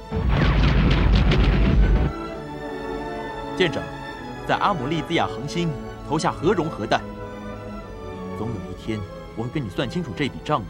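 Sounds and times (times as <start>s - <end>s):
cannon fire from a fleet of space warships: 0.0s - 3.1s
speech: 3.6s - 7.1s, 8.4s - 10.6s.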